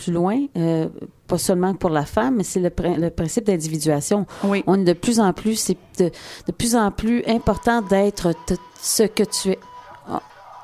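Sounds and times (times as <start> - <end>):
speech: 0.0 - 10.3
mobile phone ringtone with pig-like grunting tone: 7.3 - 10.4.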